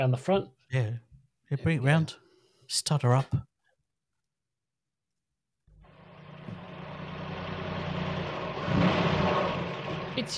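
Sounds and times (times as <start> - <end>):
speech: 0.0 - 3.5, 10.2 - 10.3
car engine starting up and revving: 5.8 - 10.3.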